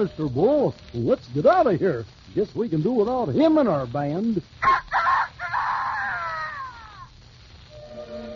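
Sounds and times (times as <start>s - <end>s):
speech: 0.0s - 5.0s
rooster crowing: 4.6s - 7.1s.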